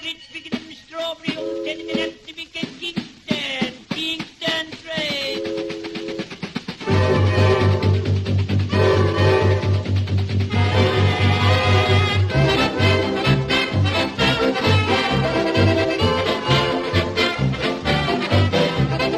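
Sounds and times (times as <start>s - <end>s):
drummer's rapid percussive hits imitating a starting locomotive: 0.5s - 19.1s
sustained horn tones in a band performance: 5.4s - 8.1s, 8.7s - 19.1s.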